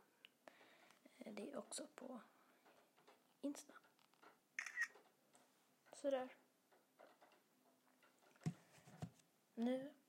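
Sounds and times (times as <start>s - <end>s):
speech: 1.2s - 2.4s, 3.4s - 3.9s, 6.0s - 6.4s, 9.6s - 10.0s
phone camera shutter click taking a photo of a jar holding slime: 4.6s - 4.9s.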